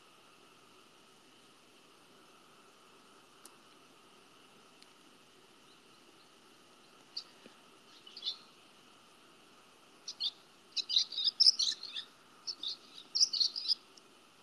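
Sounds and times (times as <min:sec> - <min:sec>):
birds chirping: 0:05.6 - 0:08.6, 0:10.0 - 0:13.8.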